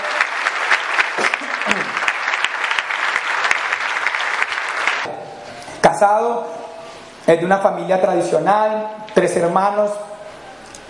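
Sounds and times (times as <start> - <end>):
audience applause: 0.0 - 5.1
speech: 6.0 - 6.6, 7.3 - 10.1.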